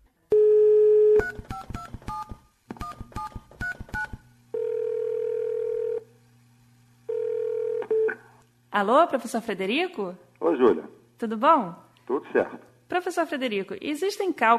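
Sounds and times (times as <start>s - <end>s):
telephone line dial tone: 0.3s - 6.0s, 7.1s - 8.2s
telephone keypad dialing beeps: 1.1s - 4.2s
speech: 8.8s - 14.5s.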